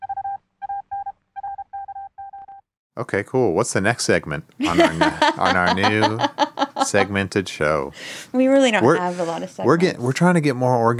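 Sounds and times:
news wire sound effect of rapid electronic beeps: 0:00.0 - 0:02.6
speech: 0:03.0 - 0:10.9
laughter: 0:04.6 - 0:07.6, 0:08.8 - 0:09.9.

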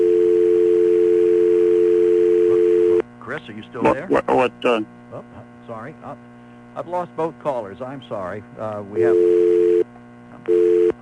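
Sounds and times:
disconnected phone line beeps after an electrical surge: 0:00.0 - 0:03.0, 0:09.0 - 0:09.8, 0:10.5 - 0:11.0
faint hum: 0:00.0 - 0:11.0
speech: 0:03.5 - 0:09.6.

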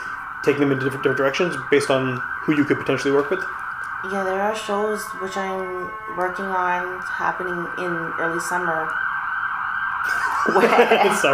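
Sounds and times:
emergency vehicle siren wailing as it passes outside: 0:00.0 - 0:11.3
speech: 0:00.4 - 0:09.0, 0:10.0 - 0:11.3
laughter: 0:10.0 - 0:11.3.

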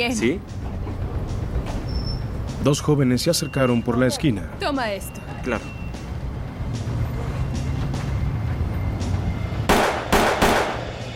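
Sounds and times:
speech: 0:00.0 - 0:00.6, 0:02.6 - 0:05.8
low rumble of street traffic: 0:00.0 - 0:11.1
gunshots fired on a neighbourhood street: 0:09.7 - 0:10.9.

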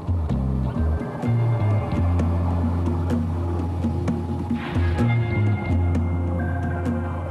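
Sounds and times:
low mechanical drone with pulsing hum from remotely operated underwater vehicle launch: 0:00.0 - 0:07.2.

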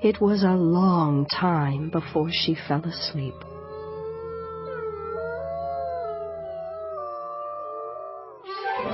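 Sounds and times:
speech: 0:00.0 - 0:03.5
wolf pack howling in chorus: 0:01.9 - 0:08.8.

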